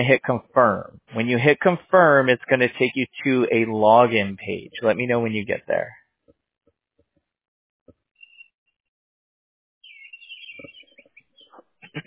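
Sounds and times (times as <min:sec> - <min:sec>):
speech: 0:00.0 - 0:06.0
birds chirping and trilling: 0:08.2 - 0:08.6, 0:09.8 - 0:12.0.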